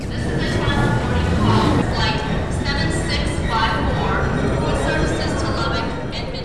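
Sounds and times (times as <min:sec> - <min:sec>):
indistinct crowd chatter in a busy airport terminal: 0:00.0 - 0:06.4
constant low rumble in an airport terminal: 0:00.9 - 0:02.0.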